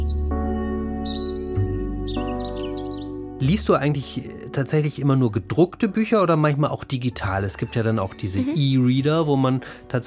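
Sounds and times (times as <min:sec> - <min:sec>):
bird chirping and warbling: 0:00.0 - 0:03.2
speech: 0:03.4 - 0:10.0.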